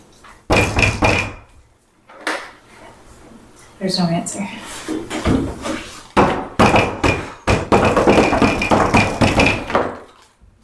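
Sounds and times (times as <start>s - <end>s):
knocking on the wooden door of a commander's room: 0.5s - 1.6s, 5.0s - 10.1s
speech: 3.8s - 5.2s.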